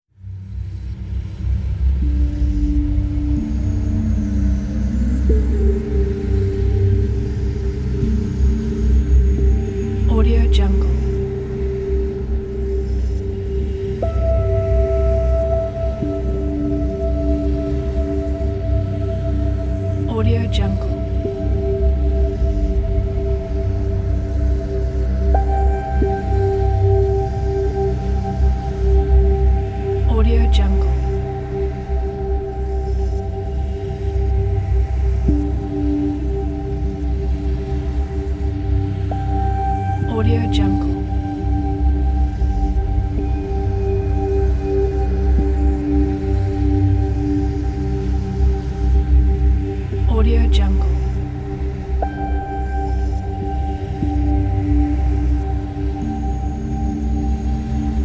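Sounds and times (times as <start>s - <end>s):
abstracted ambient soundscape: 0.2s - 58.0s.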